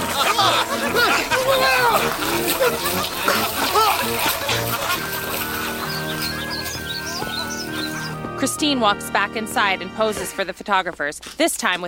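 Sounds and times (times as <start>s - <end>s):
garden hose water spraying into a man's face: 0.0s - 8.1s
workers chattering and laughing: 0.0s - 8.2s
speech: 8.4s - 11.8s.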